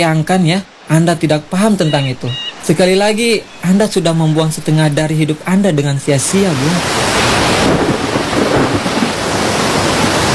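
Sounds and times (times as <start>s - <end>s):
speech: 0.0s - 7.2s
heavy rain pouring around a boat: 0.0s - 10.3s
deep rolling thunder: 7.5s - 10.3s.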